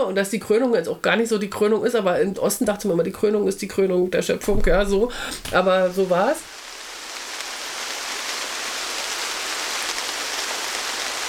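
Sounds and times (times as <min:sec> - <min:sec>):
speech: 0:00.0 - 0:06.5
heavy rain drumming on surfaces: 0:04.5 - 0:11.2.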